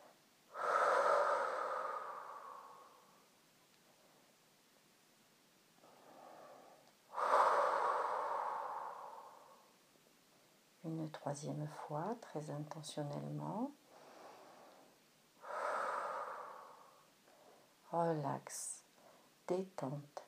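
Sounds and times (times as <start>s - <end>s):
deep breaths during a guided abdominal relaxation exercise: 0.5s - 4.4s, 5.8s - 10.6s, 13.8s - 17.8s
speech: 11.1s - 13.8s, 17.9s - 18.7s, 19.5s - 20.2s.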